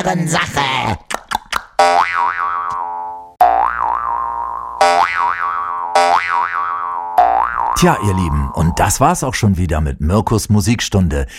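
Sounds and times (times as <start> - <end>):
speech: 0.0 - 1.1, 7.8 - 11.3
bouncy boing jaw harp twangs for hopping: 1.3 - 9.0.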